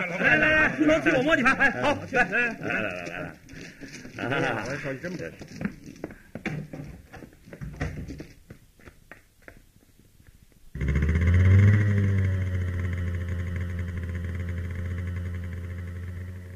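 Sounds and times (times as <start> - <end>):
laughter: 0.0 - 5.1
speech: 0.2 - 5.8
motorcycle engine running at night: 10.8 - 16.5.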